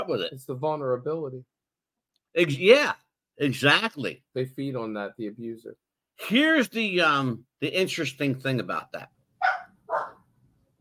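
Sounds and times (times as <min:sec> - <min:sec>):
speech: 0:00.1 - 0:01.6, 0:02.3 - 0:09.2
dog barking: 0:09.4 - 0:10.3.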